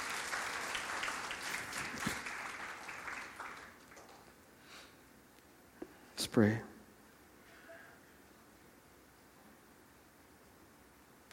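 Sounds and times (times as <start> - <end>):
audience applauding: 0.0 - 4.4
speech: 6.4 - 6.7.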